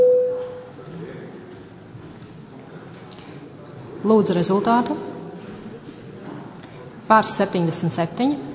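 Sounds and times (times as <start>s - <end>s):
parliament voting signal electronic bell tone: 0.0s - 0.6s
speech: 4.0s - 5.1s, 7.1s - 8.5s.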